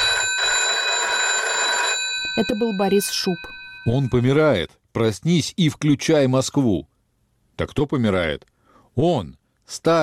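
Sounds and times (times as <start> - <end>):
telephone bell ringing in a metallic trill: 0.0 - 4.3
speech: 2.4 - 6.9, 7.6 - 10.0.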